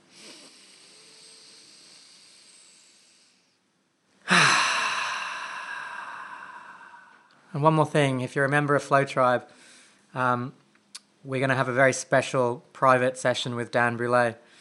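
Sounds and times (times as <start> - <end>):
loud hissing exhale of a deep conscious breath: 0.0 - 3.6, 4.3 - 7.3
person taking a deep conscious breath in: 0.0 - 3.6, 4.3 - 7.5
speech: 7.6 - 10.6, 11.2 - 14.5.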